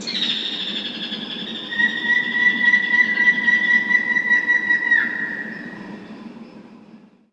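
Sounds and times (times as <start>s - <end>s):
jungle call: 0.0s - 5.8s.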